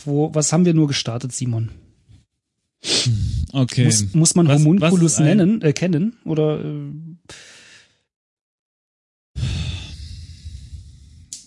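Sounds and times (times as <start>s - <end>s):
speech: 0.0s - 1.9s, 3.0s - 7.5s
heavy huffing breaths through the nose and mouth: 2.8s - 3.6s, 9.4s - 11.3s.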